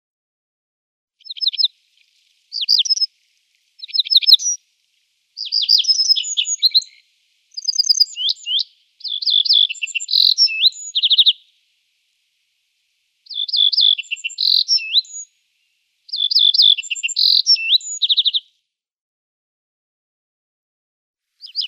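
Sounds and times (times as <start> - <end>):
little bunting song jingling phrases: 1.2 - 4.6, 5.4 - 11.4, 13.3 - 15.3, 16.1 - 18.4, 21.4 - 21.6.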